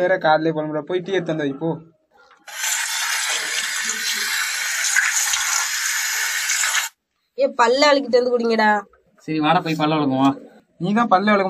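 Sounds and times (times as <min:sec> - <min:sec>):
speech: 0:00.0 - 0:02.7, 0:07.4 - 0:11.4
water pouring into a container: 0:02.5 - 0:07.0.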